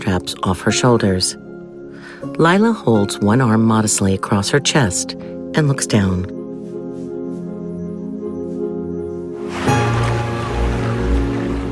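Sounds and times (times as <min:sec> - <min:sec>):
speech: 0:00.1 - 0:01.4, 0:02.2 - 0:06.4
sustained tones: 0:05.7 - 0:11.6
water splashing as someone swims on her back in a pool: 0:09.4 - 0:11.7.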